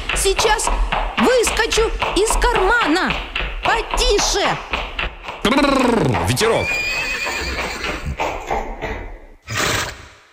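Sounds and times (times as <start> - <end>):
horse trotting with hooves clip-clopping: 0.0 - 9.4
speech: 0.2 - 4.9, 5.5 - 7.0
horse whinnying: 5.5 - 8.2, 9.4 - 10.2.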